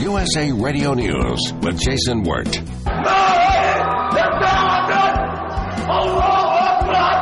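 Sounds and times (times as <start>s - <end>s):
speech: 0.1s - 3.4s
noisy crowded background in an art gallery: 2.8s - 7.2s
gunman screaming and yelling in an agitated voice at an art gallery: 3.0s - 7.2s.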